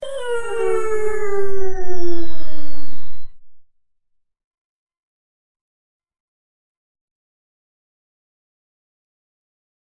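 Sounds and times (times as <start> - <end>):
person exclaiming woah in surprise: 0.0 - 2.2.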